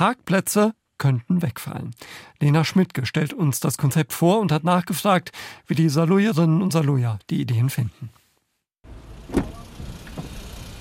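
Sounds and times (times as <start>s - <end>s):
speech: 0.0s - 8.2s
car passing at a market square: 8.9s - 10.8s
steady low rumble of street traffic: 8.9s - 10.8s.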